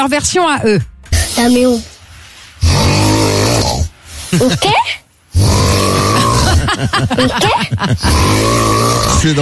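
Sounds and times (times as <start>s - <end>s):
speech: 0.0s - 1.9s, 4.3s - 5.0s, 6.8s - 9.4s
man snoring: 2.6s - 4.0s, 5.3s - 6.8s, 7.9s - 9.4s
laughter: 6.3s - 8.2s.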